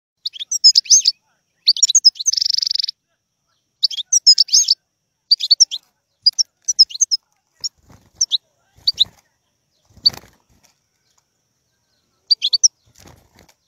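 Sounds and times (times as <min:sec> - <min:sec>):
wild European goldfinch song: 0:00.2 - 0:03.0, 0:03.8 - 0:09.1, 0:11.9 - 0:13.0.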